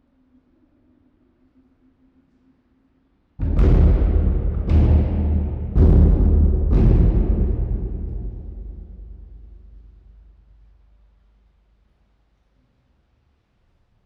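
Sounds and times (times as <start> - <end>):
beating on a plexiglass wall in a monkey house at a zoo: 3.4 - 11.1.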